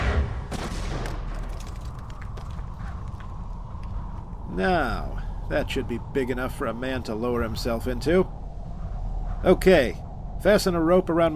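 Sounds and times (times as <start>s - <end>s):
gunshots fired to blast the top off a sealed container: 0.0s - 1.6s
speech: 4.6s - 8.4s, 9.4s - 11.3s.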